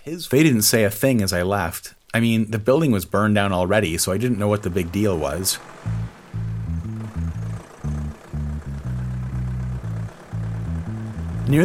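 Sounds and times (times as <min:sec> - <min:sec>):
speech: 0:00.1 - 0:06.0
deep engine rumble idling: 0:03.6 - 0:11.6.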